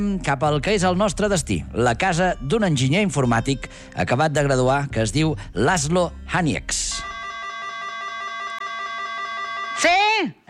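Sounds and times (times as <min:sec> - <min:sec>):
speech: 0:00.0 - 0:07.1, 0:09.8 - 0:10.4
house doorbell buzzing with rapid pulsing electronic tone: 0:06.9 - 0:09.8.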